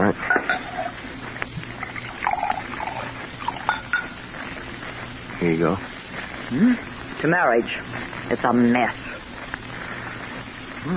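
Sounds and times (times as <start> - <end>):
bourbon being poured into a glass: 1.9 - 4.2
speech: 5.5 - 5.9, 6.5 - 9.1.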